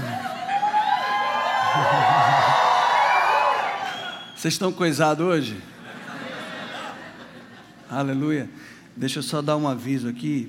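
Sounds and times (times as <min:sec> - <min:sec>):
large audience shouting and cheering with whoops: 0:00.0 - 0:04.3
laughter: 0:01.6 - 0:02.9, 0:05.8 - 0:07.9
speech: 0:04.4 - 0:05.7, 0:07.9 - 0:10.4.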